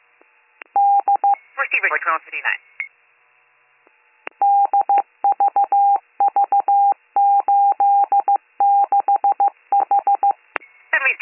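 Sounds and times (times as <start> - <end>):
burst of noisy static: 0.0 - 5.3, 10.4 - 11.2
speech: 1.8 - 2.7
telephone keypad dialing tones: 4.4 - 10.4.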